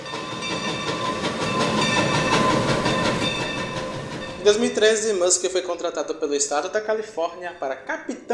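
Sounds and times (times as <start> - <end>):
wheels clacking over track joints: 0.0 - 6.5
train rumbling on rails: 0.0 - 7.9
speech: 4.4 - 8.3.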